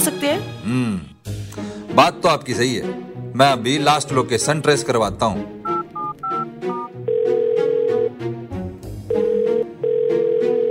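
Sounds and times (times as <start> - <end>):
speech: 0.0 - 1.4, 2.0 - 5.6
music: 0.0 - 10.6
phone dialing beeps: 5.6 - 8.1, 9.1 - 10.6
telephone ringback tones: 5.7 - 8.2, 9.1 - 10.6.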